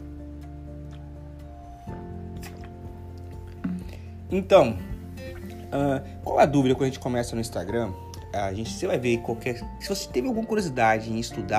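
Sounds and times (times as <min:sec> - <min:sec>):
person drinking a glass of water, gulping and swallowing: 0:02.3 - 0:04.2
speech: 0:04.3 - 0:04.9, 0:05.7 - 0:11.5.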